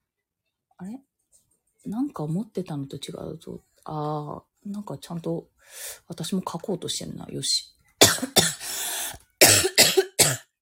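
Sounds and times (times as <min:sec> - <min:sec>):
speech: 0:00.8 - 0:01.1, 0:01.8 - 0:08.4
person coughing and choking: 0:08.0 - 0:08.8, 0:09.4 - 0:10.6.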